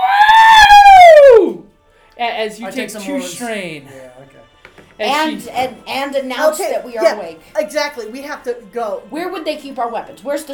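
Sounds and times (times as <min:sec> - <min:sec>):
droid robot electronic scream imitated by a voice: 0:00.0 - 0:01.6
speech: 0:02.4 - 0:10.5.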